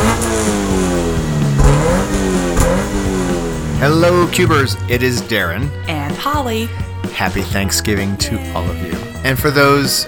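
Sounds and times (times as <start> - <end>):
car engine revving: 0.0 - 9.2
speech: 3.8 - 10.0.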